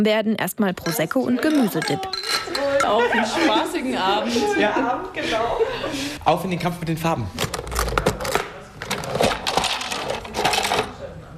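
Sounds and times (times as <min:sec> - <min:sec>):
speech: 0:00.0 - 0:07.5
glass and plastic cosmetic containers clinking on a hard coffee table in a home: 0:00.8 - 0:03.0, 0:07.4 - 0:11.0
laughter: 0:02.5 - 0:06.2.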